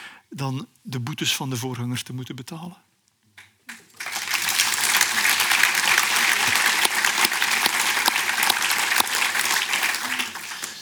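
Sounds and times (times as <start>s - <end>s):
speech: 0.3s - 2.9s
room full of people applauding in a hall: 4.0s - 10.8s.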